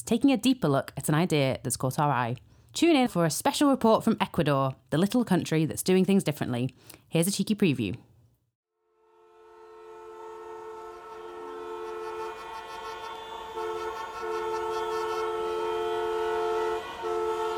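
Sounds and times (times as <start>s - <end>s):
speech: 0.1s - 8.1s
car horns honking in street traffic in Ecuador: 9.3s - 17.5s.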